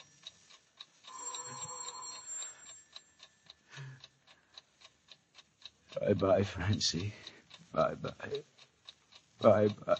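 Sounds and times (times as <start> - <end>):
clock ticking: 0.0 - 9.9
ringing tone: 1.1 - 3.5
speech: 6.0 - 8.6, 9.4 - 9.9.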